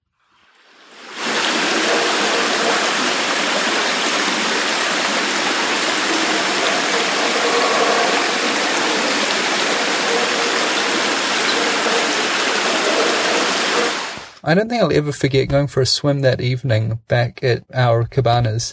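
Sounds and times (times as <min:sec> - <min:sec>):
rushing steady flowing water: 0:00.5 - 0:14.2
speech: 0:14.5 - 0:18.7.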